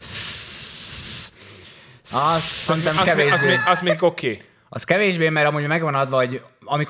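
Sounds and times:
voice imitating forceful pump-like exhaling at the gym: 0.0 - 3.6
speech: 2.1 - 6.8
laughter: 2.9 - 4.2.

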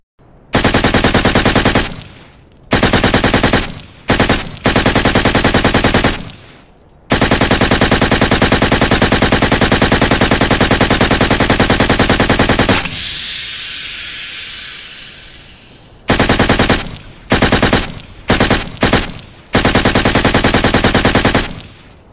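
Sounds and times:
MG5 machine gun fire in sustained bursts: 0.5 - 13.2, 15.6 - 21.9
hissing lull: 10.3 - 18.2.

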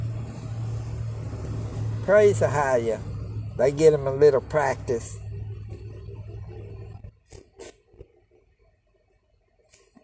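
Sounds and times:
tractor trailer truck engine rumbling while driving in: 0.0 - 9.6
speech: 2.1 - 5.2.

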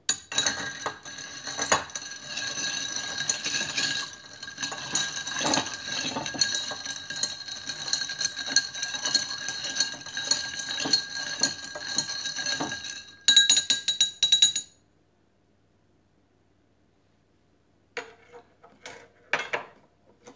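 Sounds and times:
ice clinking in mixing glass while stirring a vermouth cocktail: 0.1 - 14.8.

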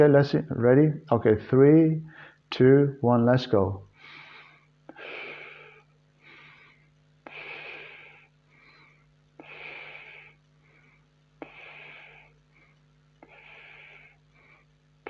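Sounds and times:
speech: 0.0 - 3.9
steady medium-depth breaths in a paced group breathing exercise: 3.9 - 15.0.

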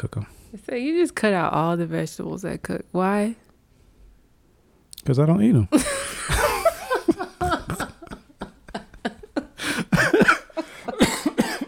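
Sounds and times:
speech: 0.0 - 3.4, 5.0 - 6.0
laughter: 5.8 - 11.3
person coughing: 9.8 - 11.6.

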